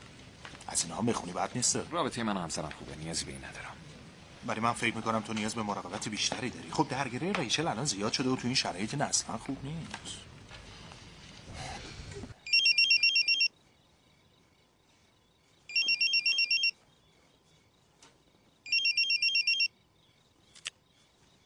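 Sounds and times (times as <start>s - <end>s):
speech: 0.7s - 10.3s
home phone ringing with a warbling electronic trill: 12.4s - 13.5s, 15.7s - 16.8s, 18.7s - 19.8s.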